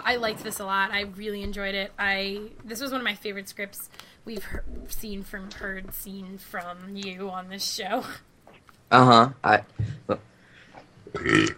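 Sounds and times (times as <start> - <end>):
speech: 0.1 - 8.3, 8.9 - 10.3, 11.1 - 11.5
loud burp after drinking root beer: 11.0 - 11.5.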